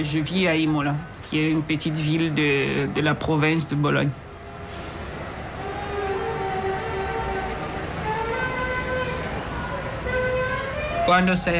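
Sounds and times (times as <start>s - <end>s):
speech: 0.0s - 4.2s, 11.1s - 11.5s
steady roar of busy city traffic in Yaoundé Cameroon: 0.0s - 11.5s
car horns honking in busy city traffic in Yaoundé Cameroon: 5.6s - 11.5s.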